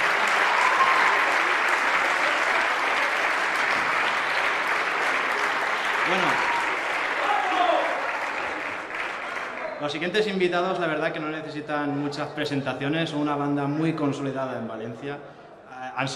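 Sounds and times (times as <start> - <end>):
faint voices and cheers: 0.0 - 10.1
crowd applauding: 0.0 - 10.4
speech: 6.1 - 6.5, 9.8 - 15.4, 16.0 - 16.1.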